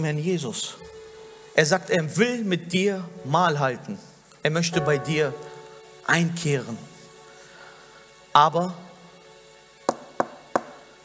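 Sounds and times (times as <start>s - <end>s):
speech: 0.0s - 1.0s, 1.6s - 6.9s, 8.4s - 8.8s
sharp knocks on a door: 9.9s - 10.8s.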